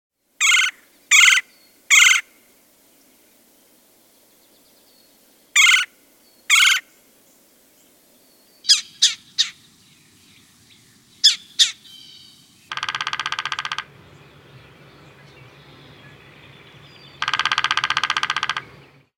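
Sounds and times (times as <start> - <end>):
Red-bellied Woodpeckers calling: 0.4 - 2.4, 5.5 - 7.0, 8.6 - 9.7, 11.2 - 19.1.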